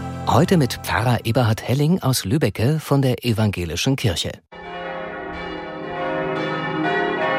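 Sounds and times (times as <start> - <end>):
speech: 0.3 - 4.6
church bells of a church in Lübbecke ringing in a peal: 4.5 - 7.3.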